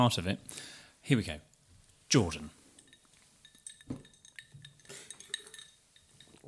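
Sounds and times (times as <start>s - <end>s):
speech: 0.0s - 1.5s, 2.1s - 2.6s
glasses clinking together during a toast: 2.6s - 6.4s.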